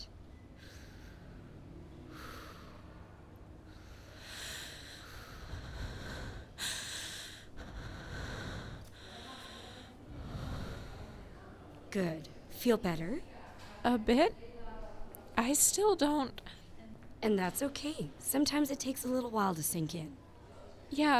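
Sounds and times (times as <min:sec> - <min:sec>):
person breathing in and out: 0:00.6 - 0:11.5
speech: 0:11.9 - 0:14.5, 0:15.4 - 0:16.5, 0:17.2 - 0:20.2, 0:20.9 - 0:21.1.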